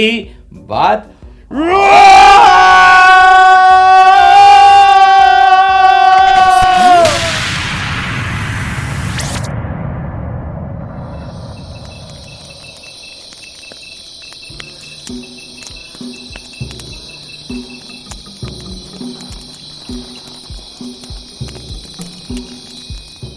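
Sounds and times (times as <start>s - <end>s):
speech: 0.0s - 2.9s
group shouting a yell together: 1.5s - 7.4s
rhythmic low pulses: 6.4s - 23.3s
insects chirping in the Amazon jungle at night: 7.8s - 23.3s.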